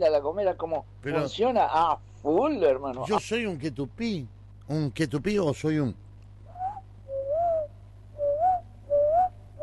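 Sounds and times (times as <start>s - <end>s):
speech: 0.0s - 6.0s
low hum: 0.0s - 9.6s
person whistling an imitation of a small dove call: 6.5s - 9.6s.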